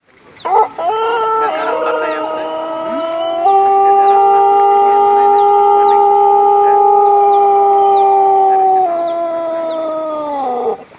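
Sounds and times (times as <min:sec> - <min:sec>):
ayam pelung rooster: 0:00.4 - 0:10.9.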